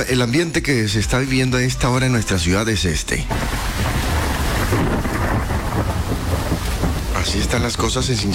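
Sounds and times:
speech: 0.0s - 4.1s, 7.3s - 8.3s
deep rumbles of thunder: 3.3s - 8.3s
heavy rain: 3.3s - 8.3s.

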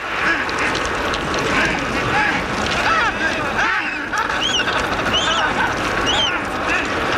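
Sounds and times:
constant rushing background: 0.0s - 7.1s
Adélie penguin colony calling with braying and squawking cries: 0.1s - 7.1s
laughter: 1.5s - 7.1s.

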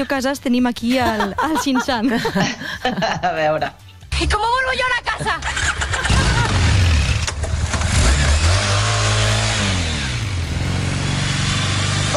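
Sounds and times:
speech: 0.0s - 5.8s
laughter: 0.9s - 3.4s, 5.0s - 6.9s
motorcycle engine revving: 5.4s - 12.1s.

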